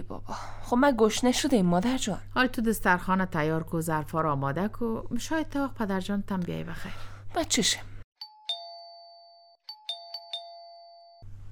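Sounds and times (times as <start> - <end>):
speech: 0.1 - 7.9
electronic doorbell chime at a front gate: 8.2 - 11.3.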